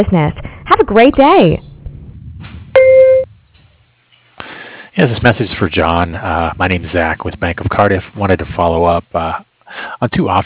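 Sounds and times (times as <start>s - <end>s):
speech: 0.0s - 1.7s, 5.0s - 10.4s
voicemail recording tone electronic beep: 2.8s - 3.3s.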